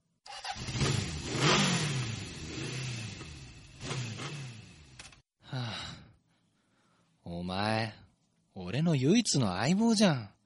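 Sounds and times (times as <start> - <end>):
motorcycle engine cranking in cold weather, failing to start: 0.3 - 5.2
speech: 8.7 - 10.4.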